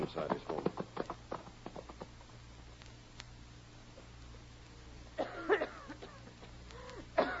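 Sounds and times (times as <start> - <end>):
speech: 0.1 - 0.8
woman coughing: 5.2 - 6.2, 7.1 - 7.3.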